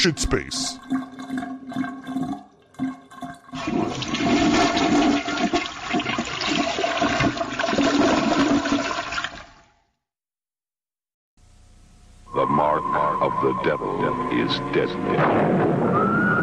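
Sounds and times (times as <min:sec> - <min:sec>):
speech: 0:00.0 - 0:01.9, 0:13.4 - 0:16.4
toilet flushing: 0:00.8 - 0:09.7.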